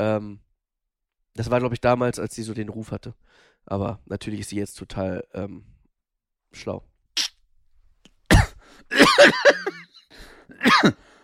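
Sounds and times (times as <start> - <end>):
speech: 0.0 - 0.5, 1.4 - 5.7, 6.5 - 7.3, 9.2 - 11.1
harsh raspy coughing fit: 8.3 - 10.0, 10.6 - 11.0.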